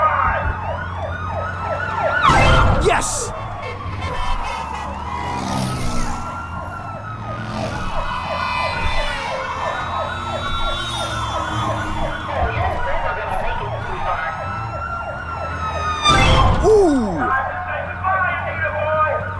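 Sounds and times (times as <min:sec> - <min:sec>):
police siren wailing in a video game: 0:00.0 - 0:19.3
excited voice: 0:02.8 - 0:03.3, 0:16.6 - 0:17.4.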